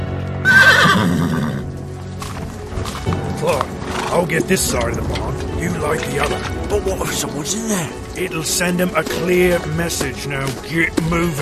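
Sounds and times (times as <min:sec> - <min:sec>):
horses' hooves shuffling: 0:00.0 - 0:11.3
horse whinnying: 0:00.4 - 0:01.8
horses snorting: 0:00.4 - 0:05.3
speech: 0:03.4 - 0:11.3.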